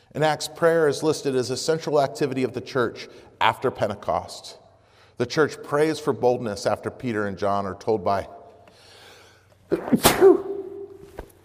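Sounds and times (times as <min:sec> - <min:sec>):
speech: 0:00.1 - 0:04.6, 0:05.2 - 0:08.4, 0:09.7 - 0:10.5
person sneezing: 0:09.7 - 0:11.2.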